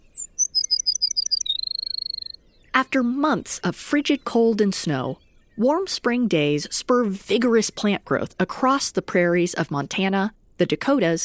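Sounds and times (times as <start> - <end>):
Baird's Sparrow song with tinkling chips and trill: 0.0 - 6.7
speech: 2.8 - 11.2.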